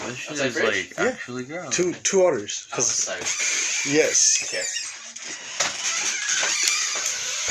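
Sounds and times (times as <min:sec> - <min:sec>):
speech: 0:00.1 - 0:05.4
door grinding and squealing with high-pitched scraping: 0:03.2 - 0:07.4.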